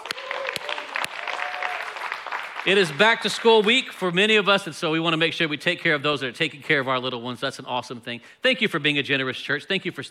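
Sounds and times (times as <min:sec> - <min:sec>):
church congregation clapping: 0:00.0 - 0:04.0
speech: 0:02.6 - 0:10.0.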